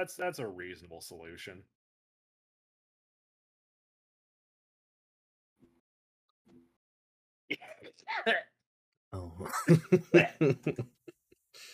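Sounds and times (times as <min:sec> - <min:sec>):
speech: 0:00.0 - 0:01.8, 0:07.5 - 0:08.5, 0:09.1 - 0:11.0
short sharp coughs: 0:07.5 - 0:08.3
voiced breathy bursts like laughter: 0:09.4 - 0:11.2.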